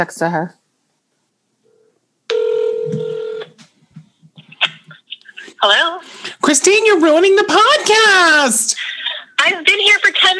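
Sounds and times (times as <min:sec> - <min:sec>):
speech: 0:00.0 - 0:00.6, 0:05.6 - 0:10.3
telephone ringing tone during an outgoing call: 0:01.7 - 0:03.6.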